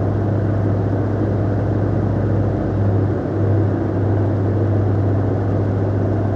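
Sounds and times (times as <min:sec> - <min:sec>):
distant airplane at medium idle: 0:00.0 - 0:06.3.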